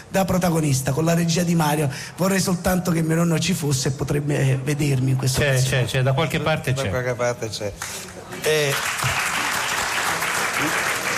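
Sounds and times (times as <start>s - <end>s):
speech: 0.1s - 9.2s, 10.6s - 10.9s
audience applause for a film in competition in Venice: 7.8s - 11.1s.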